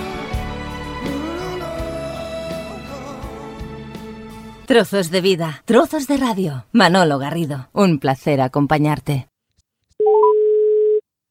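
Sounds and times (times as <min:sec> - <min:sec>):
speech: 0:04.7 - 0:09.3
steady electronic telephone tone while dialing out: 0:10.0 - 0:11.0.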